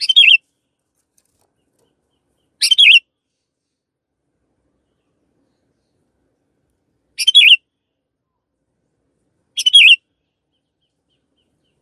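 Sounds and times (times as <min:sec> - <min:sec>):
canary twittering: 0:00.0 - 0:00.4, 0:02.5 - 0:03.0, 0:07.2 - 0:07.6, 0:09.6 - 0:10.0.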